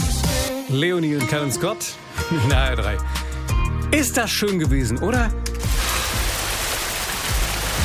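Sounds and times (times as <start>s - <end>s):
speech: 0.7s - 3.2s, 3.9s - 5.8s
steady rain falling on roofs and streets: 5.6s - 7.8s.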